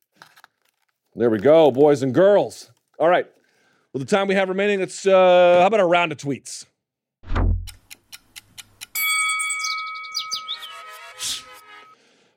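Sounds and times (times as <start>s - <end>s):
speech: 1.2s - 7.4s
short whoosh: 7.2s - 7.7s
deep thump: 7.2s - 7.8s
clock ticks: 7.7s - 9.0s
bright ringing chime: 9.0s - 12.0s.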